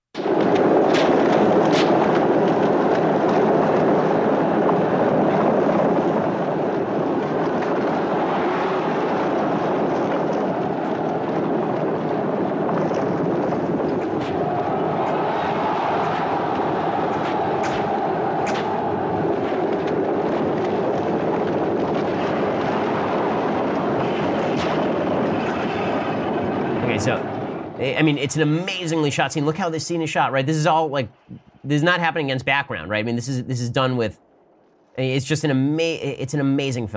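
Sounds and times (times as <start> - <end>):
sharp cracks in film chariot race: 0.1 - 27.7
film chariot race with blades on wheel spokes rumbling roar: 7.6 - 28.4
speech: 28.0 - 34.2, 35.0 - 36.9.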